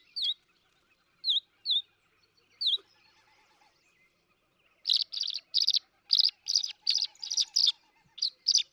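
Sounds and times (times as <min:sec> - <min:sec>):
tree swallow clear and buzzy gurgling chirps: 0:04.9 - 0:08.6.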